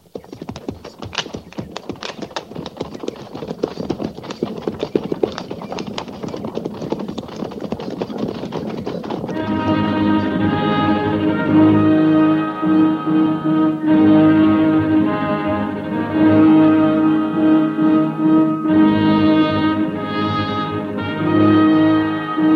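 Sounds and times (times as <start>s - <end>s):
horses of a mounted army company trotting: 0.0s - 9.8s
music: 9.3s - 22.5s.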